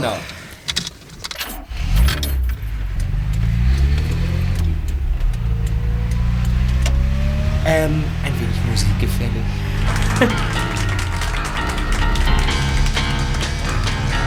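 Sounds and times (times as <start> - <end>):
speech: 0.0 - 0.4, 7.7 - 8.2, 8.8 - 10.6
keys jangling: 0.7 - 3.3
car engine starting and revving as the car drives off: 1.4 - 14.2
laughter: 7.7 - 14.1.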